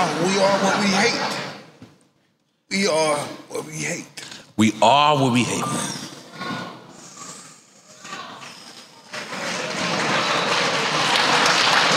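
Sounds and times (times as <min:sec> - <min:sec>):
speech: 0:00.3 - 0:01.5, 0:02.7 - 0:06.0
audience applause: 0:09.1 - 0:11.9.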